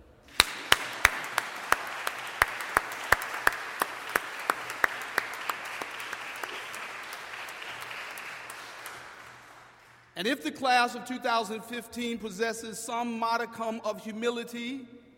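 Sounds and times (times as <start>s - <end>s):
large audience applauding: 0.3s - 10.2s
speech: 10.2s - 15.0s.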